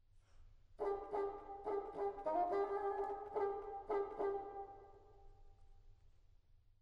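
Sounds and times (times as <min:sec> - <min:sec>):
bassoon playing a wren motif: 0:00.8 - 0:04.8.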